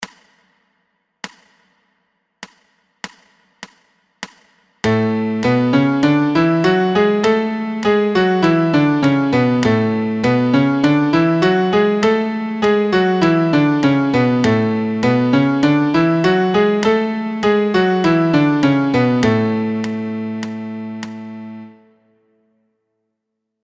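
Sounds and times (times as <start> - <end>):
MIDI A major scale at 100: 4.9 - 22.2.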